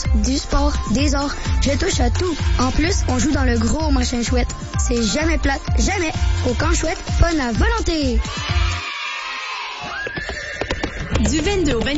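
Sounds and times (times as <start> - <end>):
speech: 0.1 - 8.8, 11.2 - 11.9
horse neighing at an equestrian show: 9.8 - 11.2.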